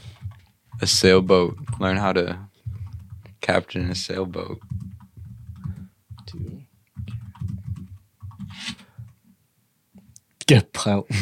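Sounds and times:
typing on a keyboard: 0:00.2 - 0:02.0, 0:02.7 - 0:03.3, 0:04.5 - 0:09.2
speech: 0:00.8 - 0:02.5, 0:03.4 - 0:04.7, 0:10.5 - 0:11.1.

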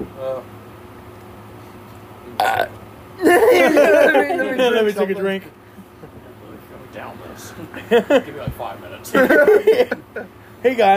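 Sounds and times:
low steady hum: 0:00.0 - 0:10.9
burp: 0:02.4 - 0:02.8
laughter: 0:03.2 - 0:04.8, 0:07.6 - 0:08.4, 0:09.1 - 0:10.3
speech: 0:04.1 - 0:05.6, 0:07.0 - 0:10.9.

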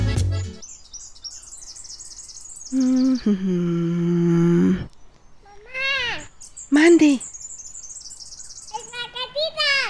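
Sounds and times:
young birds chirping in a nest: 0:00.6 - 0:03.8, 0:04.8 - 0:09.8
speech: 0:02.7 - 0:04.2, 0:06.8 - 0:07.3.

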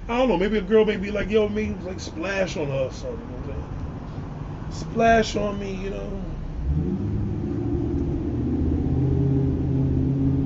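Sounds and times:
old pickup work truck exhaust rumbling as it drives past: 0:00.0 - 0:10.4
speech: 0:00.1 - 0:03.8, 0:04.7 - 0:07.0.

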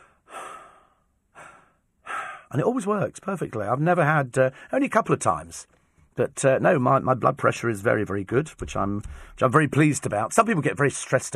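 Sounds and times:
deep breathing: 0:00.0 - 0:02.5, 0:09.0 - 0:09.4
speech: 0:02.5 - 0:11.3.

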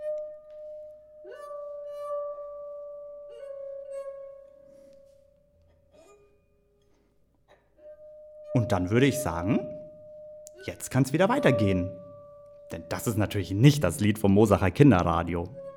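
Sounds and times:
water-filled drinking glasses ringing when struck: 0:08.1 - 0:14.1
speech: 0:08.6 - 0:09.7, 0:10.6 - 0:12.0, 0:12.7 - 0:15.6.

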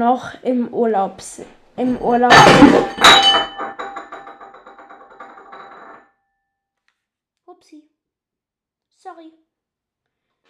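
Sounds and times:
speech: 0:00.0 - 0:03.4
bowl crashing on a hard floor and clattering: 0:01.9 - 0:06.1.

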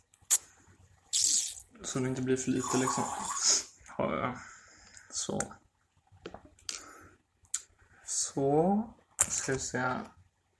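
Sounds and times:
speech: 0:01.8 - 0:04.5, 0:05.2 - 0:05.6, 0:08.4 - 0:10.2
water being poured to top up: 0:02.4 - 0:03.7.

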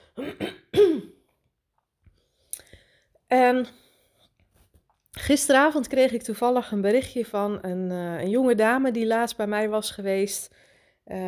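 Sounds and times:
person clearing throat: 0:00.0 - 0:01.3
speech: 0:03.5 - 0:03.8, 0:05.3 - 0:11.2.

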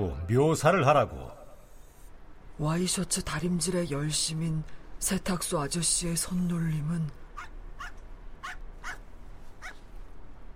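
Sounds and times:
speech: 0:00.0 - 0:01.4, 0:02.6 - 0:07.2
steady low hum: 0:00.0 - 0:10.5
dog barking: 0:07.4 - 0:09.0, 0:09.6 - 0:09.8.

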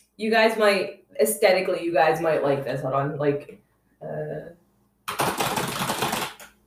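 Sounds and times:
speech: 0:00.2 - 0:04.6
typing on a loud computer keyboard in an empty room: 0:05.1 - 0:06.6.

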